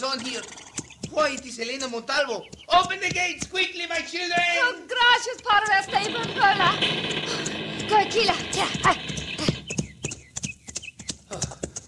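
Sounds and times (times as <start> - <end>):
speech: 0.0 - 9.0
stallion hoofbeats ridden at speed: 0.0 - 11.8.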